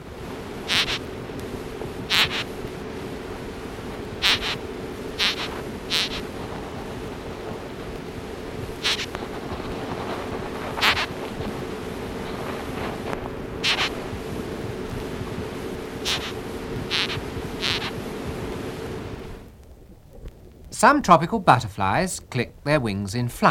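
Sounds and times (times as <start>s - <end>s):
steady low hum: 0.0s - 23.5s
screech beetle warning call by rubbing body on wing case: 0.7s - 1.0s, 2.1s - 2.5s, 4.2s - 4.6s, 5.2s - 6.2s, 8.8s - 9.2s, 10.8s - 11.1s, 13.6s - 14.0s, 16.0s - 18.0s
speech: 20.8s - 23.5s.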